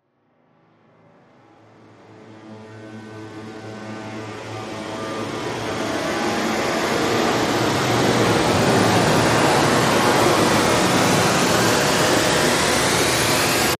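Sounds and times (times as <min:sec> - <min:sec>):
intense riser: 0:02.1 - 0:13.7.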